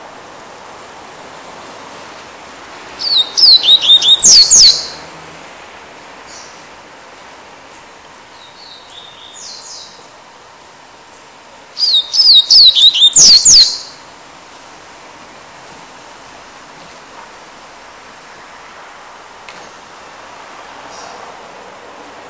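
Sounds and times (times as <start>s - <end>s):
Double-collared Seedeater singing: 2.9s - 5.2s, 11.8s - 14.0s.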